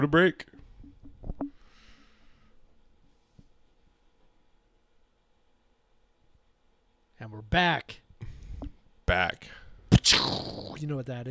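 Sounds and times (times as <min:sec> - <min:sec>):
speech: 0:00.0 - 0:00.6, 0:07.2 - 0:08.0, 0:09.1 - 0:11.2
voice imitating a cannon blast: 0:09.9 - 0:10.8.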